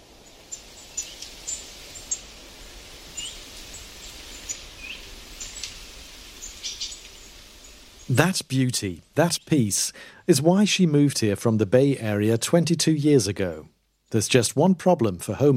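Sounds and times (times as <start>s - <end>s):
many birds of many varieties chirping and singing outdoors in the morning in the American West: 3.2s - 5.7s, 6.4s - 8.2s
speech: 8.1s - 15.5s.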